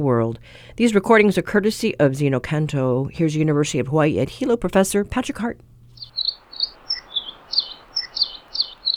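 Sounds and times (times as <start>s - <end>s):
speech: 0.0s - 5.7s
faint hiss: 0.0s - 8.9s
Nihoa finch singing short bright chirping notes: 6.0s - 8.9s.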